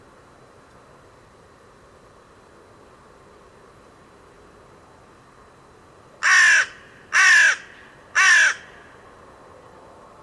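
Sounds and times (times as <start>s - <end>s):
bird giving a harsh grating caw: 6.2s - 9.0s.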